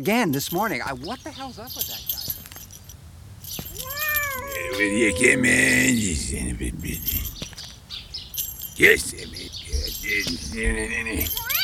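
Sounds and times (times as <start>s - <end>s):
speech: 0.0s - 2.2s, 4.7s - 7.2s, 8.8s - 9.4s, 10.1s - 11.4s
faint scuffling: 0.1s - 11.6s
cat meowing and caterwauling: 3.7s - 6.5s, 11.3s - 11.6s
laughter: 4.3s - 7.2s, 8.8s - 11.6s.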